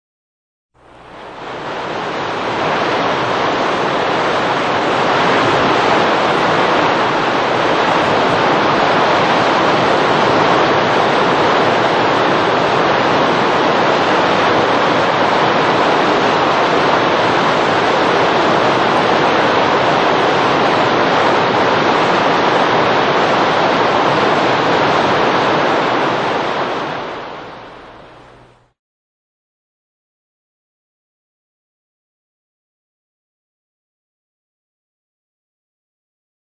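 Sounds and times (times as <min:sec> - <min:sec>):
waterfall: 0:00.8 - 0:28.8.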